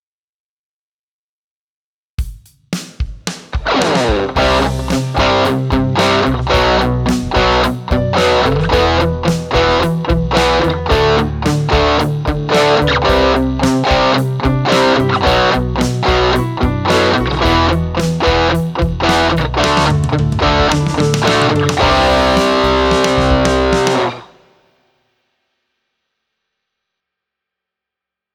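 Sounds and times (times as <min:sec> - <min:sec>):
distortion effect dry mix on Boss GX-1: 0:03.6 - 0:24.5.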